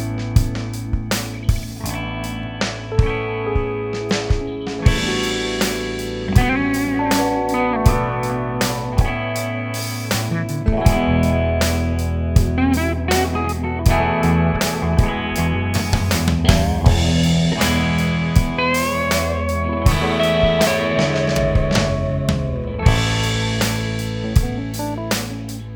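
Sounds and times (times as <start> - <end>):
drum fill: 0.1 - 25.7.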